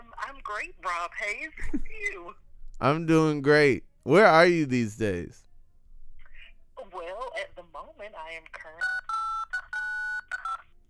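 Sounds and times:
speech: 0.5s - 5.4s, 8.0s - 9.0s
phone keypad tones pressed by accident by a cheek: 8.8s - 10.6s.

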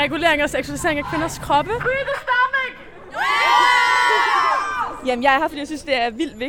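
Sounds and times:
speech: 0.0s - 3.6s, 5.0s - 6.4s
crowd of demonstrators shouting and cheering at a protest: 1.0s - 5.1s.

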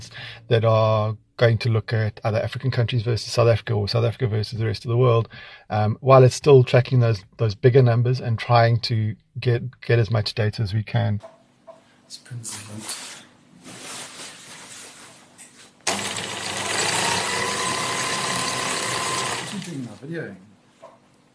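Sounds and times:
speech: 0.0s - 11.4s, 12.1s - 13.1s, 20.0s - 20.5s
sewing machine stitching a big piece of green fabric: 15.8s - 20.0s.

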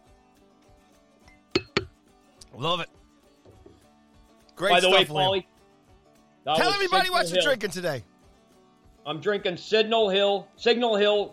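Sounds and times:
glasses clinking in a toast: 1.3s - 1.9s
speech: 2.5s - 3.0s, 4.6s - 5.5s, 6.4s - 8.1s, 9.0s - 11.3s.

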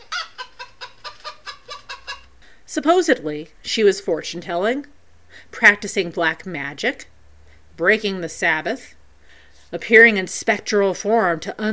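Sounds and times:
hens clucking: 0.0s - 2.4s
speech: 2.7s - 7.1s, 7.8s - 9.0s, 9.7s - 11.7s.

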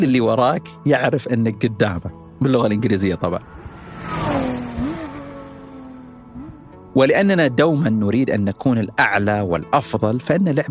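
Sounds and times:
speech: 0.0s - 4.3s, 7.0s - 10.6s
Ford car engine revving: 2.2s - 7.2s.

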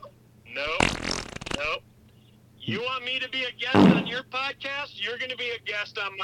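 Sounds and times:
fart sound effect: 0.7s - 1.8s, 3.8s - 4.2s
speech: 2.6s - 6.2s.

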